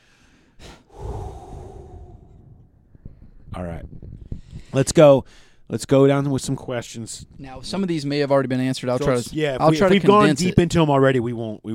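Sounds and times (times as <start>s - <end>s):
person breathing in and out: 0.0s - 2.8s
speech: 3.6s - 4.0s, 4.7s - 11.7s.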